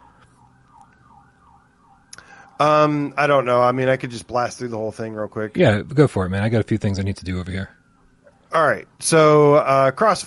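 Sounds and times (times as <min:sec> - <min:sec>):
emergency vehicle siren wailing: 0:00.0 - 0:04.5, 0:06.8 - 0:09.6
speech: 0:02.6 - 0:07.8, 0:08.5 - 0:10.2.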